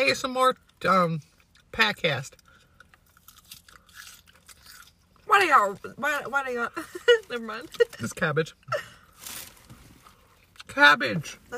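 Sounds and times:
speech: 0:00.1 - 0:02.4, 0:05.3 - 0:09.0, 0:10.7 - 0:11.5
person chewing fries crunchily: 0:02.3 - 0:05.2.

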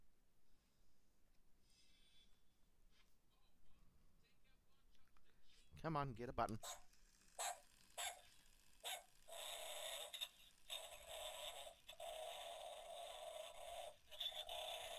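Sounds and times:
speech: 0:05.8 - 0:06.8
small electronic toy dog barking: 0:06.6 - 0:14.9.

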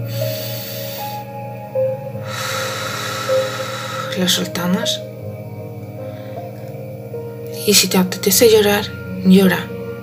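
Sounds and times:
long deep breath drawn in through the nose: 0:00.0 - 0:04.2
soft sustained tones: 0:00.0 - 0:07.6
speech: 0:04.2 - 0:05.1, 0:07.7 - 0:09.7.

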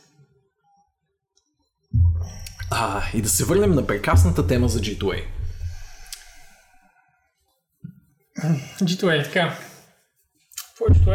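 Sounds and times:
water being poured: 0:02.0 - 0:06.6
speech: 0:02.3 - 0:05.4, 0:08.5 - 0:09.6, 0:10.8 - 0:11.1.

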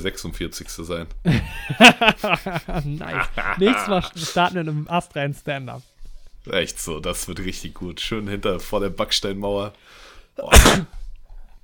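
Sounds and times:
speech: 0:00.0 - 0:11.0
laughter: 0:01.3 - 0:04.6
breathing: 0:09.8 - 0:10.4
person sneezing from hay fever: 0:10.4 - 0:11.1.

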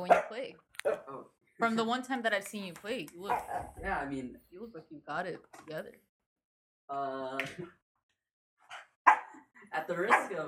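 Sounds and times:
dog barking: 0:00.0 - 0:01.1, 0:03.3 - 0:03.8, 0:08.7 - 0:09.4, 0:10.1 - 0:10.4
speech: 0:01.6 - 0:06.1, 0:06.9 - 0:07.8, 0:09.8 - 0:10.4.

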